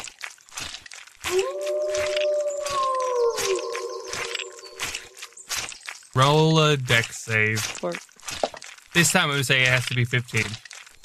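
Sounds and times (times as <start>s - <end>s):
scattered noises: 1.2s - 5.6s, 6.2s - 11.0s
person imitating a wolf howl: 1.3s - 5.2s
speech: 6.2s - 8.1s, 9.0s - 10.6s.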